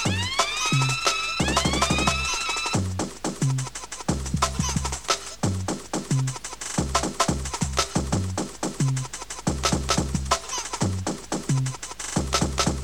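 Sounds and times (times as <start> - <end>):
siren wailing: 0.0 - 2.8
loud pounding electronic music with a heavy steady beat: 0.0 - 12.8.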